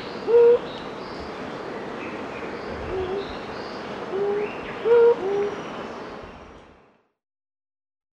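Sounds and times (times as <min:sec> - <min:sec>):
other birds calling faintly in the background: 0:00.0 - 0:07.0
superb fruit dove hooting: 0:00.2 - 0:00.6, 0:02.9 - 0:03.3, 0:04.1 - 0:05.5.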